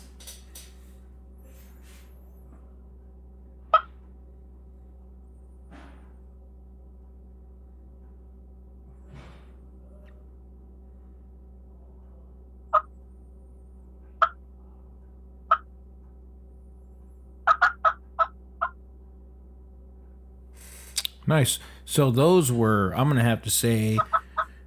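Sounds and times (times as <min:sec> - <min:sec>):
low hum: 0:00.0 - 0:24.6
old hen turkey cackle played on a turkey call: 0:17.5 - 0:18.8, 0:23.9 - 0:24.6
speech: 0:21.3 - 0:24.1.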